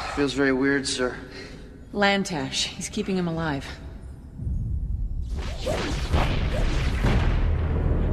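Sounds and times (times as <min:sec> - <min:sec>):
speech: 0:00.2 - 0:03.8
staff weapon fire in a collapsing underground lab: 0:05.3 - 0:08.0.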